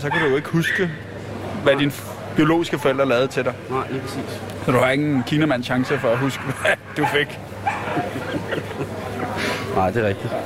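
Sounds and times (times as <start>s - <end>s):
dog barking in short yappy barks: 0.0s - 0.9s, 5.7s - 8.1s
speech: 0.0s - 9.2s, 9.8s - 10.4s
laughter: 7.7s - 9.8s.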